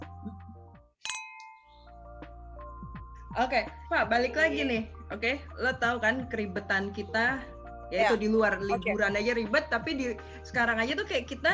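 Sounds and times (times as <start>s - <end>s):
glasses clinking in a toast: 1.1s - 1.9s
speech: 3.4s - 11.5s.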